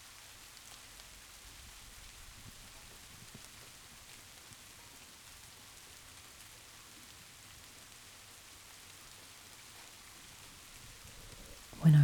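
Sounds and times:
steady rain pattering on a window: 0.0s - 12.0s.

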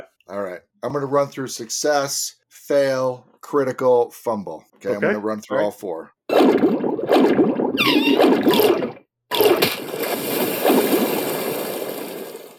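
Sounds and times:
speech: 0.3s - 6.7s, 7.4s - 8.8s
creature seizing prey, thrashing splashes: 6.3s - 12.5s
churning rush of gurgling water: 6.4s - 12.5s.

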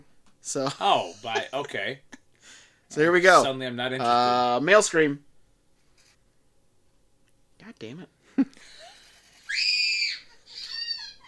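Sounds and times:
speech: 0.4s - 5.3s, 7.7s - 8.8s
child screaming: 9.5s - 11.2s.

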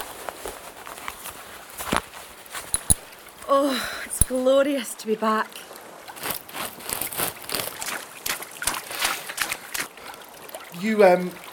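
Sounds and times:
speech: 3.5s - 5.7s, 10.8s - 11.4s
water splashing as someone swims at night: 6.0s - 11.5s.

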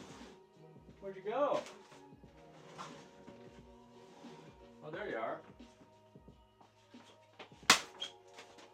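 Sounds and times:
speech: 1.1s - 1.8s
hand slap against skin swatting a mosquito: 7.7s - 8.0s.

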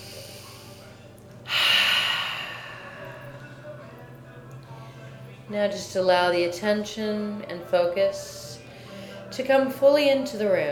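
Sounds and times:
deep breath in through the nose and out through the mouth: 0.0s - 3.5s
speech: 5.5s - 8.4s, 9.4s - 10.7s.

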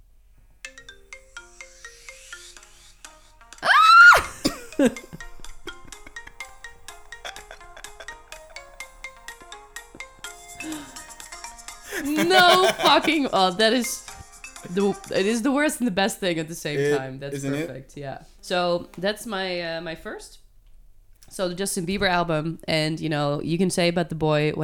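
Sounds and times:
mobile phone ringtone playing a pop-style electronic melody: 0.6s - 3.6s, 4.4s - 15.3s
loud cough or vocal burst: 4.2s - 4.9s, 11.9s - 13.1s, 16.8s - 17.7s
speech: 4.8s - 5.2s, 12.7s - 14.0s, 14.7s - 20.4s, 21.3s - 24.6s
laughter: 7.1s - 8.3s, 11.9s - 13.4s, 16.7s - 17.7s.

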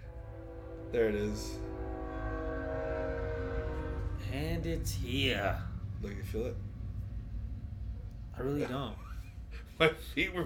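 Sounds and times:
sustained tonal horn-like lines: 0.0s - 7.2s
train rumbling past: 0.0s - 10.4s
speech: 0.9s - 1.7s, 4.3s - 6.7s, 8.4s - 9.0s, 9.8s - 10.4s.

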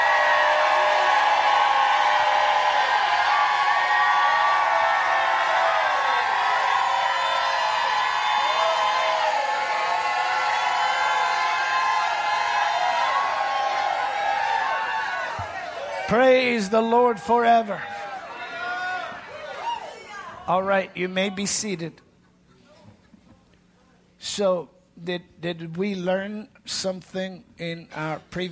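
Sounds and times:
whoops rising above the crowd: 0.0s - 16.0s, 17.8s - 20.3s
large audience shouting and cheering: 0.0s - 21.7s
speech: 16.1s - 18.0s, 20.5s - 22.0s, 24.4s - 28.5s.

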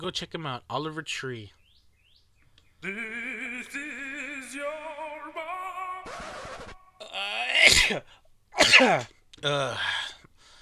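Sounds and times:
speech: 0.0s - 1.6s, 2.8s - 4.9s, 7.6s - 10.0s
person sneezing from accumulating dust: 6.1s - 9.1s.

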